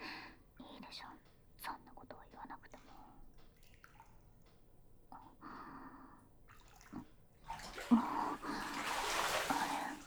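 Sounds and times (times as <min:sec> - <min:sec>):
speech: 0:00.9 - 0:01.1
water splashing in a bathtub as a person gets out of the bath: 0:02.7 - 0:04.8, 0:06.4 - 0:10.0.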